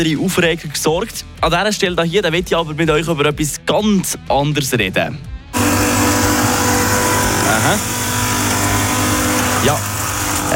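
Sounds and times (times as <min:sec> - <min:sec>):
speech: 0:00.0 - 0:05.3, 0:07.6 - 0:08.0, 0:09.6 - 0:09.9
leaf blower small engine droning: 0:05.5 - 0:10.5.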